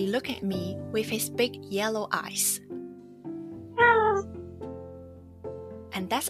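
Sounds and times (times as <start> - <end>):
speech: 0.0 - 2.6, 3.8 - 4.4, 6.0 - 6.2
big black male foster cat meowing: 3.8 - 4.3.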